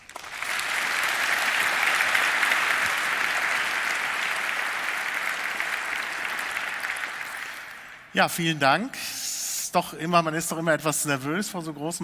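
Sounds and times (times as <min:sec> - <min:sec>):
audience applause: 0:00.0 - 0:08.1
speech: 0:08.2 - 0:12.0.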